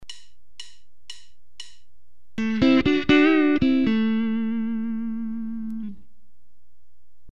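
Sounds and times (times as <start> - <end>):
guitar double-stop bend: 2.4 - 6.0.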